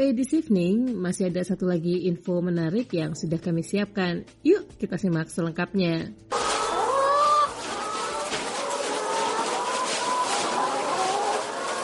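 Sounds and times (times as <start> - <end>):
speech: 0.0 - 6.4
chickens in battery cages on a poultry farm clucking and squawking: 6.3 - 11.8.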